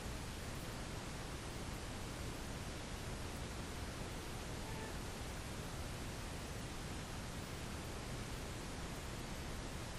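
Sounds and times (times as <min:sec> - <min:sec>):
static in a tattoo shop: 0:00.0 - 0:09.9.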